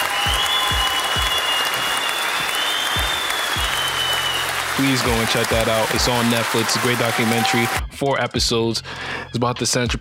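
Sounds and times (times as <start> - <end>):
dense crowd applause: 0.0 - 7.8
speech: 4.8 - 10.0.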